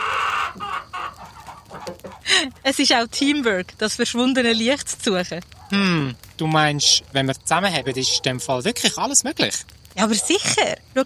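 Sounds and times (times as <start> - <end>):
hen clucking: 0.0 - 2.3
speech: 2.4 - 11.0.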